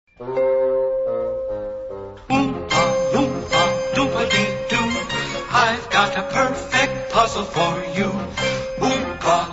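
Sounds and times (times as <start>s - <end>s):
ringtone melody: 0.2s - 9.4s.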